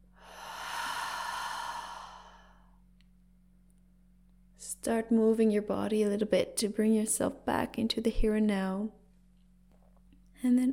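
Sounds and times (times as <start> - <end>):
deep breath in and out during a guided relaxation exercise: 0.0 - 2.8
faint steady low hum: 0.0 - 10.7
speech: 4.8 - 9.0, 10.4 - 10.7.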